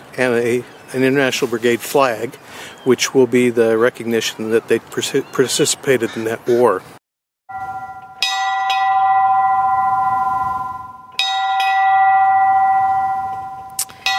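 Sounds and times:
speech: 0:00.2 - 0:07.0
large bell ringing at armistice anniversary ceremony at Peace Arch border crossing: 0:07.5 - 0:14.1.

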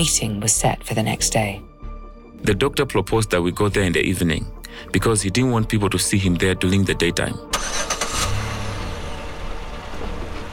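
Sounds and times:
speech: 0:00.0 - 0:01.7, 0:02.4 - 0:07.8
car engine starting and revving: 0:07.5 - 0:10.5.

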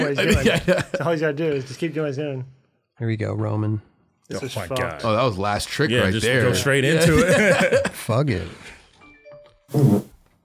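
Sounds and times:
laughter: 0:00.0 - 0:01.4, 0:06.9 - 0:08.2
speech: 0:00.0 - 0:08.8, 0:09.7 - 0:10.4
short loud raspy fart: 0:09.7 - 0:10.2.

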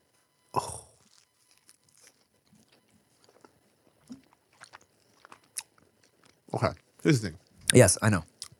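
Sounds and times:
speech: 0:00.5 - 0:00.8, 0:06.6 - 0:08.3
crunchy bite into a slice of pizza: 0:00.6 - 0:07.0
wet chewing of pizza with soft smacks and crunches: 0:00.8 - 0:08.5.

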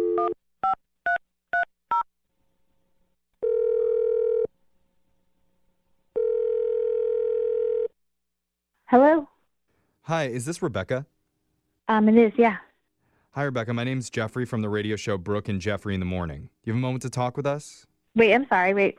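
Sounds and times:
long steady telephone tones: 0:00.0 - 0:02.1, 0:03.4 - 0:04.6, 0:06.1 - 0:08.0
speech: 0:10.1 - 0:11.2, 0:11.9 - 0:12.7, 0:13.3 - 0:18.9.

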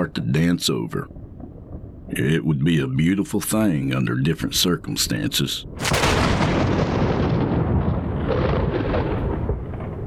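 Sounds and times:
speech: 0:00.0 - 0:01.2, 0:02.1 - 0:07.0
loud thunderclap rumbling: 0:00.9 - 0:02.5, 0:04.5 - 0:10.0.

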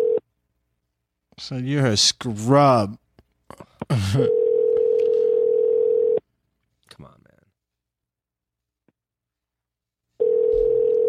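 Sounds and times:
steady mid-pitched telephone tone while a call goes through to voicemail: 0:00.0 - 0:00.2, 0:04.3 - 0:06.2, 0:10.2 - 0:11.0
speech: 0:01.4 - 0:04.4.

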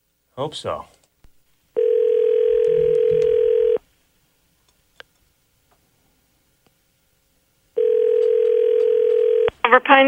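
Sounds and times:
speech: 0:00.4 - 0:01.0, 0:09.7 - 0:10.0
telephone ring tone through the receiver on a call to a gas station: 0:01.8 - 0:03.8, 0:07.8 - 0:09.5.

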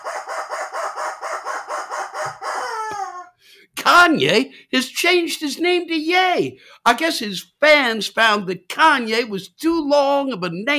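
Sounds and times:
squeezed rubber chicken squawking: 0:00.0 - 0:03.4
speech: 0:03.8 - 0:10.7.

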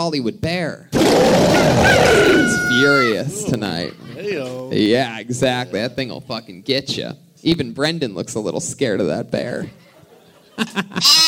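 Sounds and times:
speech: 0:00.0 - 0:09.8, 0:10.6 - 0:11.2
sheep bleating: 0:01.5 - 0:03.3, 0:11.0 - 0:11.2
laughter: 0:09.7 - 0:11.2.

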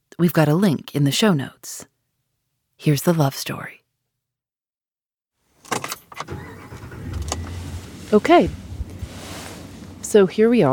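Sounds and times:
speech: 0:00.2 - 0:01.9, 0:02.8 - 0:03.8, 0:08.1 - 0:08.6, 0:10.1 - 0:10.7
vehicle door clunking shut: 0:05.6 - 0:10.0
keys jingling: 0:05.7 - 0:06.3
large rented pickup truck engine idling: 0:06.3 - 0:10.1.

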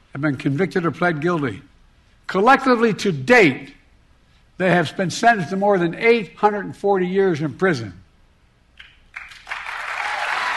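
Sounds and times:
speech: 0:00.1 - 0:01.7, 0:02.3 - 0:03.8, 0:04.6 - 0:08.0
audience applauding: 0:09.1 - 0:10.5.

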